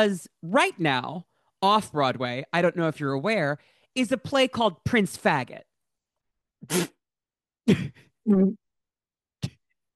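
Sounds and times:
speech: 0:00.0 - 0:05.7, 0:06.6 - 0:07.0, 0:07.7 - 0:08.6
woman coughing on her vape: 0:07.6 - 0:08.1.

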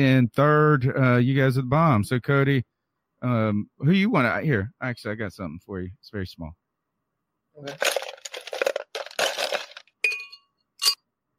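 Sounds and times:
speech: 0:00.0 - 0:06.6, 0:07.6 - 0:08.0
ice cubes clinking in a glass: 0:07.6 - 0:11.0.

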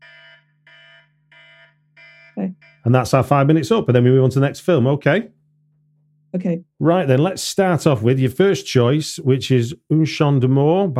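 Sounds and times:
timer alarm with shrill electronic beeps: 0:00.0 - 0:03.2
speech: 0:02.4 - 0:05.4, 0:06.3 - 0:10.9.

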